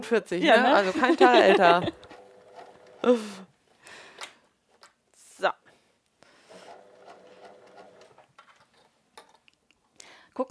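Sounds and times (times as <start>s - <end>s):
speech: 0.0s - 2.0s, 3.0s - 3.5s, 5.4s - 5.6s
laughter: 0.5s - 2.1s
sewing machine stitching: 1.8s - 3.2s, 6.5s - 8.3s.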